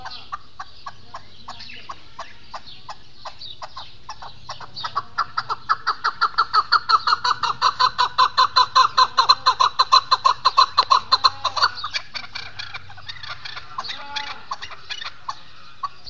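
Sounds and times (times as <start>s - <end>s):
partridge calling with harsh clucking notes: 0.0s - 16.0s
laughter: 4.9s - 11.8s.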